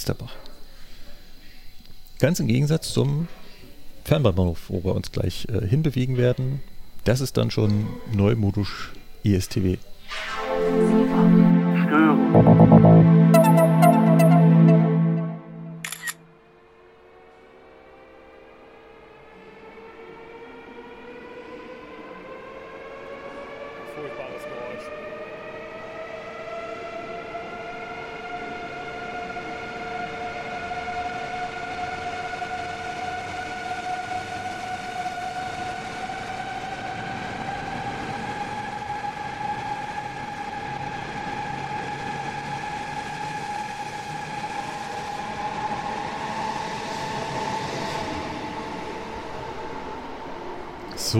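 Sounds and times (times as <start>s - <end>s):
speech: 0.0s - 0.5s, 2.2s - 3.4s, 4.0s - 11.4s, 12.3s - 13.2s
ICE class 407 high-speed electric train departing with traction motors whining: 10.0s - 51.1s.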